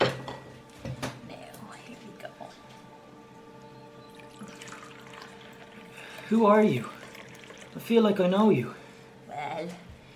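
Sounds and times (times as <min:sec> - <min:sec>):
low hum: 0:00.0 - 0:10.1
tea pouring into a cup: 0:04.1 - 0:08.7
speech: 0:06.3 - 0:06.9, 0:07.8 - 0:08.8.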